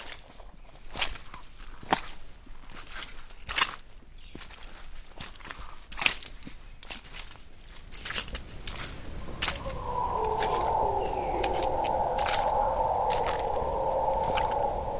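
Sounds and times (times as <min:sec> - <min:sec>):
howler monkeys roaring in the distance: 0:08.4 - 0:14.9.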